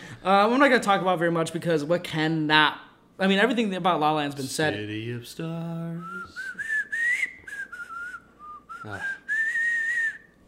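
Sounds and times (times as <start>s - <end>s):
speech: 0.2s - 6.6s, 8.8s - 9.2s
man whistling a tuneful melody: 5.9s - 10.4s.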